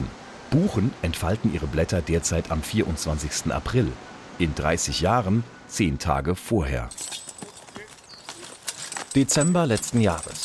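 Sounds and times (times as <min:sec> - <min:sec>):
speech: 0:00.5 - 0:07.2, 0:09.2 - 0:10.4
working horses' hooves clip-clopping on forest ground: 0:06.9 - 0:10.4.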